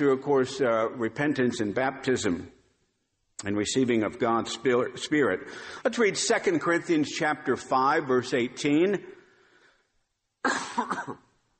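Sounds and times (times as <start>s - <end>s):
speech: 0.0s - 2.6s, 3.4s - 9.2s, 10.4s - 11.3s
rough throat clearing: 10.4s - 11.2s.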